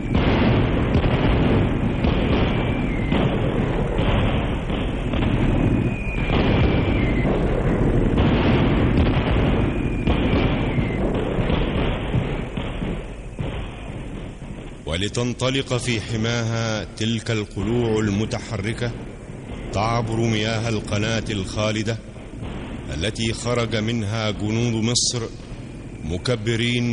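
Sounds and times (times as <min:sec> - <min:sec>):
artillery fire and explosions in a battle scene: 0:00.0 - 0:26.9
whistling tones gliding slightly downward: 0:01.9 - 0:03.5, 0:05.4 - 0:07.5, 0:09.6 - 0:11.0
speech: 0:15.0 - 0:19.1, 0:19.7 - 0:22.1, 0:22.9 - 0:25.4, 0:26.0 - 0:26.9.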